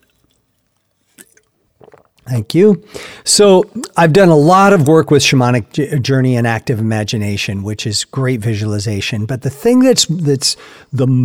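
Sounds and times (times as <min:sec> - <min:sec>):
sipping water: 0:00.0 - 0:04.0
speech: 0:02.3 - 0:11.2.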